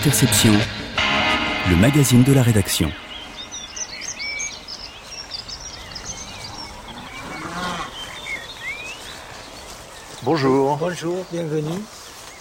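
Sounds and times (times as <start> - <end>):
speech: 0.0 - 0.8, 1.6 - 3.0, 10.3 - 12.4
small birds chirping and twittering: 0.3 - 12.4
cow letting out a low moo on a farm: 6.0 - 8.2.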